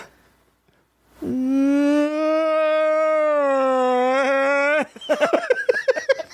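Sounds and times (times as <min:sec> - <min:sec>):
person's voice imitating a guttural cryptid howl: 0:01.2 - 0:05.0
person laughing: 0:04.2 - 0:06.3.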